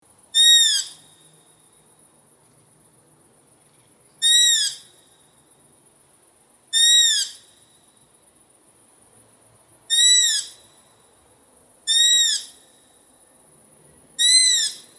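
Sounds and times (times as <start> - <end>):
long-eared owl calling: 0.4 - 1.0, 4.2 - 4.8, 6.8 - 7.4, 9.9 - 10.6, 11.9 - 12.6, 14.2 - 14.9.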